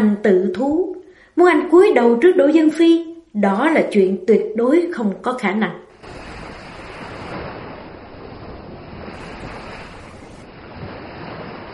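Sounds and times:
speech: 0.2s - 6.2s
gusting wind around a boat deck: 5.9s - 11.7s
surging sea waves around a boat deck: 5.9s - 11.7s.

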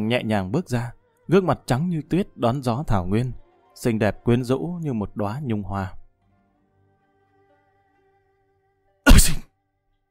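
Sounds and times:
speech: 0.0s - 6.0s
man sneezing stepping out of a relay inn: 9.1s - 9.5s.

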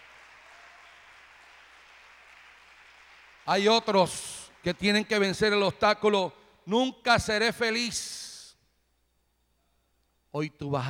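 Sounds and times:
church congregation applauding: 0.0s - 5.0s
speech: 3.5s - 8.2s, 10.3s - 10.8s.

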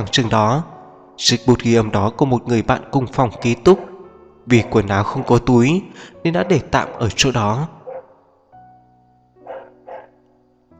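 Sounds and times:
speech: 0.0s - 3.9s, 4.5s - 7.8s
neighbour's dog barking: 3.3s - 5.4s, 6.4s - 7.2s, 7.8s - 8.2s, 9.4s - 10.2s.

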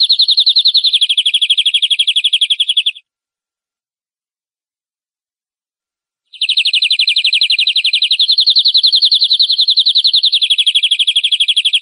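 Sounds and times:
canary training song trilling: 0.0s - 3.0s, 6.3s - 11.8s.

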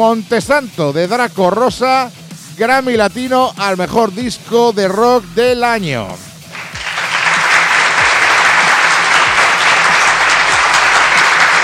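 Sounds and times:
speech: 0.0s - 6.3s
sustained applause: 6.4s - 11.6s.

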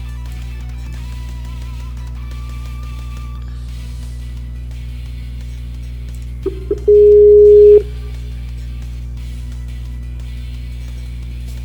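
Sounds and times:
phone call tones while a call is restarted: 6.5s - 8.0s.

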